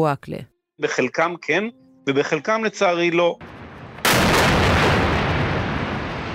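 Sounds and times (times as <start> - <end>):
speech: 0.0 - 3.5
missile strike explosion destroying a high-rise building: 3.4 - 6.3
roaring rumble of debris from collapsing high-rise building: 3.4 - 6.3.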